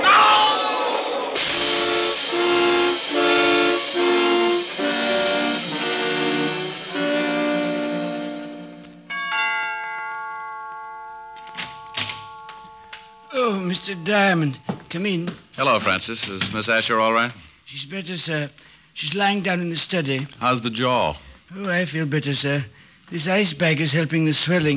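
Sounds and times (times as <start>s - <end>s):
train whistle blasts: 0.0s - 9.1s
rumbling hiss: 1.2s - 9.1s, 12.2s - 24.7s
speech: 13.7s - 24.7s.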